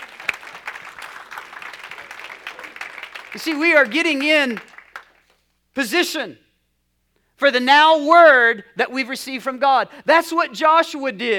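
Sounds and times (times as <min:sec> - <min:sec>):
a few people clapping: 0:00.0 - 0:05.4
speech: 0:03.3 - 0:04.7, 0:05.8 - 0:06.4, 0:07.4 - 0:11.3.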